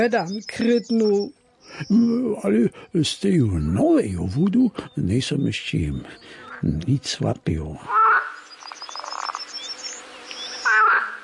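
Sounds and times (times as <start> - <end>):
speech: 0.0 - 8.3
insect-like trilling: 0.0 - 11.2
loud chorus of frogs croaking: 0.0 - 11.2.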